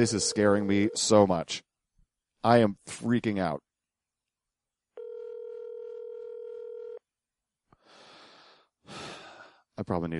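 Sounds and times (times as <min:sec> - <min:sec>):
speech: 0:00.0 - 0:01.7, 0:02.4 - 0:03.6, 0:09.8 - 0:10.1
telephone ringback tone from an outgoing call made on air: 0:00.1 - 0:01.0, 0:05.0 - 0:07.0.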